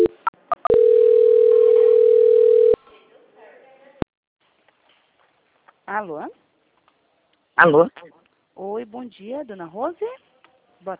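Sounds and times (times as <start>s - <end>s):
telephone call transfer tone: 0.0s - 2.8s
speech: 6.0s - 6.4s, 7.6s - 10.9s.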